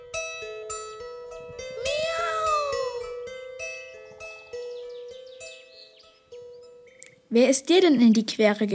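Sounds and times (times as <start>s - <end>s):
tomcat meowing mournfully: 1.8s - 3.1s
speech: 7.3s - 8.7s.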